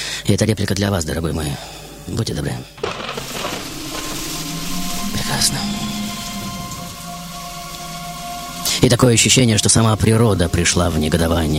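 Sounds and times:
speech: 0.3 - 2.9, 5.4 - 6.0, 8.8 - 11.5
wet snow and hail beating down in a storm: 2.8 - 6.9
wind rushing: 2.8 - 9.1.

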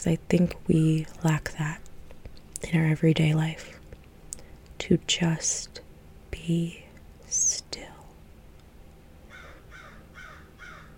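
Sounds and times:
speech: 0.0 - 1.9, 2.6 - 3.8, 4.8 - 5.8, 6.4 - 7.8
low rumble: 0.0 - 10.9
bird calling with harsh crow-like caws: 9.3 - 10.9.

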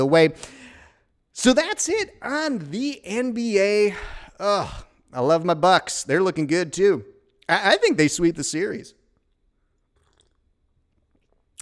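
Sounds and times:
speech: 0.0 - 0.6, 1.4 - 9.0
person sipping coffee: 9.2 - 11.6.

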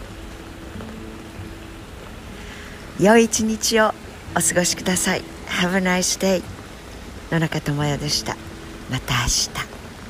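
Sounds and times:
rain pattering and pouring: 0.0 - 10.0
speech: 3.0 - 6.6, 7.3 - 9.7.

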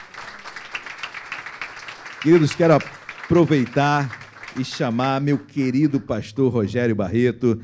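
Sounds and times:
church audience applauding: 0.0 - 6.1
speech: 2.2 - 7.6.

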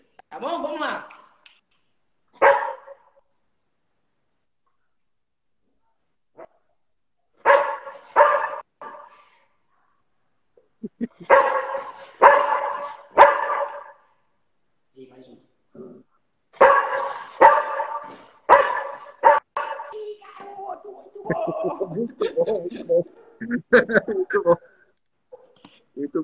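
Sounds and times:
speech: 0.3 - 1.2, 21.7 - 24.7
dog barking on command: 2.4 - 3.2, 7.4 - 9.3, 11.2 - 14.1, 16.6 - 20.0, 23.1 - 23.5, 25.3 - 25.6
laughter: 10.8 - 11.4, 21.1 - 24.6.

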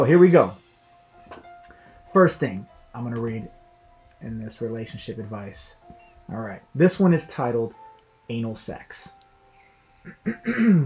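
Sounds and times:
speech: 0.0 - 0.6, 2.1 - 3.6, 4.2 - 9.2, 10.0 - 10.8
person clearing throat: 10.1 - 10.8.

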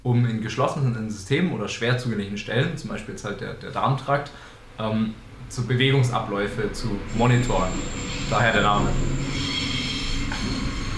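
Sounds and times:
speech: 0.0 - 9.3
train railcars rumbling past: 4.2 - 10.9
thin high metallic squeal from train wheels: 7.0 - 10.9.

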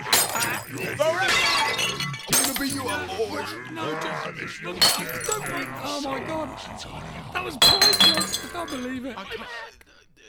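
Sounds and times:
glass bottles shattering: 0.0 - 3.3, 4.8 - 6.0, 7.6 - 9.1
speech: 0.4 - 1.6, 2.6 - 10.2.

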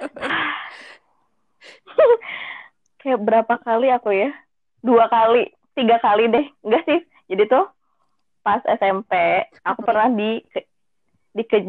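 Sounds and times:
heavy breathing: 0.1 - 1.0
speech: 3.1 - 7.8, 8.4 - 10.7, 11.4 - 11.6.

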